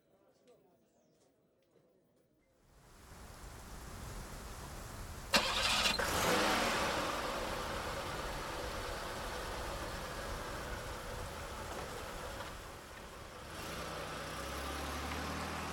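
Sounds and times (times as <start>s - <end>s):
constant hiss of rain: 2.8s - 15.7s
police car engine cranking and idling: 3.2s - 15.7s.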